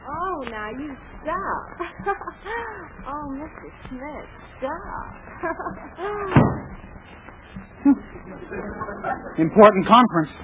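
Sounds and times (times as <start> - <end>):
speech: 0.4 - 10.4
laughter: 1.7 - 3.0, 5.4 - 6.4, 7.8 - 9.4
door at City Hall creaking and slamming shut: 6.2 - 6.8.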